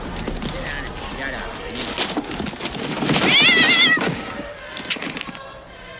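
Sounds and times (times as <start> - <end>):
chatter: 0.0 - 5.9
room noise: 0.0 - 5.9
cat meowing: 3.2 - 4.2.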